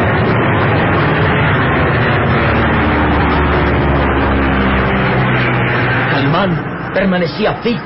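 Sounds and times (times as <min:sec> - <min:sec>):
small propeller plane engine droning: 0:00.0 - 0:07.8
wind roaring in a raging storm: 0:00.0 - 0:07.8
speech: 0:06.4 - 0:07.8.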